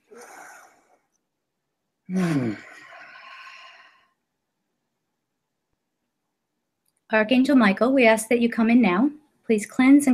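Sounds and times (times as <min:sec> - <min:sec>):
deep breath in and out during a guided meditation: 0:00.0 - 0:01.0, 0:02.4 - 0:04.2
speech: 0:02.1 - 0:02.7, 0:07.1 - 0:10.1.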